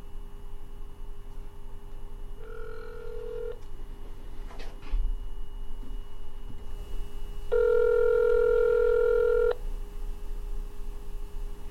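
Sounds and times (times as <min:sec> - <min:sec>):
low hum: 0:00.0 - 0:11.6
electronic telephone ring tones on a call: 0:02.4 - 0:03.6, 0:07.5 - 0:09.6.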